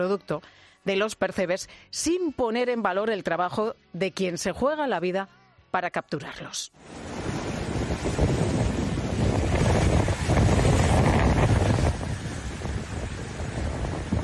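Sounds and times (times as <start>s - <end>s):
speech: 0.0s - 7.1s
gusting wind buffeting: 6.8s - 14.2s
waves crashing against rocks: 6.8s - 14.2s.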